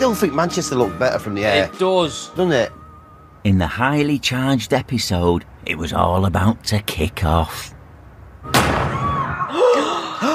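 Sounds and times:
speech: 0.0 - 2.8, 3.4 - 7.8
gunshot in a TV drama scene: 8.5 - 9.4.

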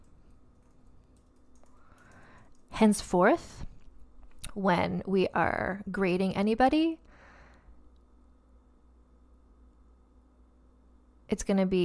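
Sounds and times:
typing on a computer keyboard: 0.0 - 2.7
low hum: 0.0 - 11.8
speech: 2.8 - 3.7, 4.6 - 7.0, 11.3 - 11.8.

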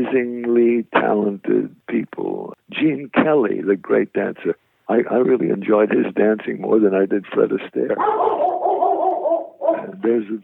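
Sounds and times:
speech: 0.0 - 8.6, 9.7 - 10.4
female shepherd dog barking at gardeners: 8.0 - 10.0.

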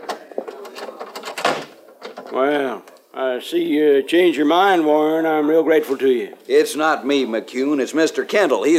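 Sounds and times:
door closing: 0.0 - 2.5
door thud: 1.2 - 2.3
speech: 2.3 - 8.7.

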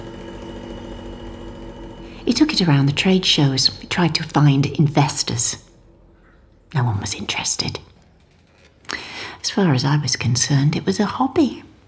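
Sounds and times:
small electric refrigerator motor of an inventor's original design humming: 0.0 - 6.8
speech: 2.3 - 5.7, 6.7 - 7.9, 9.4 - 11.7.

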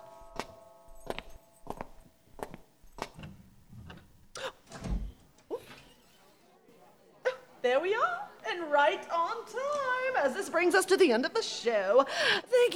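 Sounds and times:
door opened for arriving guests with sharp clacks, rattles and creak: 3.0 - 6.0
speech: 7.7 - 12.7.

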